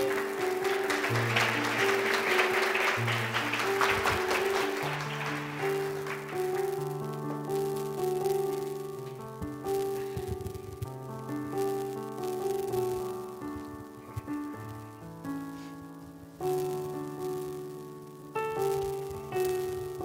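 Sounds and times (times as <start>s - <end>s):
crowd applauding: 0.0s - 7.1s
sustained keyboard chords: 0.0s - 20.0s.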